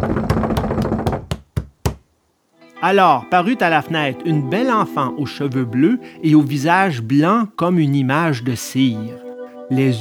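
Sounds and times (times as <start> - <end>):
door being kicked and punched: 0.0 - 2.0
speech: 2.8 - 9.9.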